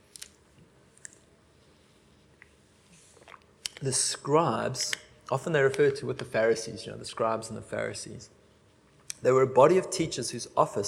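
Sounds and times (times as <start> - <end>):
soft wet mouth clicks and smacks: 0.1 - 0.4, 1.0 - 1.3, 3.2 - 3.8, 9.0 - 9.2
person sipping water: 2.4 - 3.8
speech: 3.8 - 8.4, 9.2 - 10.8.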